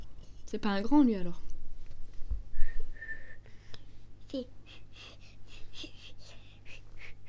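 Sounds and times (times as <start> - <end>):
speech: 0.5 - 1.4, 4.3 - 5.1
child whistling a short thin tone: 2.6 - 3.4, 6.7 - 7.2.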